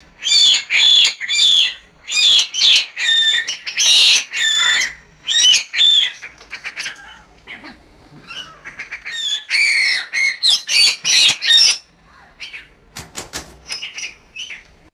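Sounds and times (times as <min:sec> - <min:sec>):
agitated birds screeching in cages: 0:00.0 - 0:14.9
birds flapping in cages: 0:12.6 - 0:14.5.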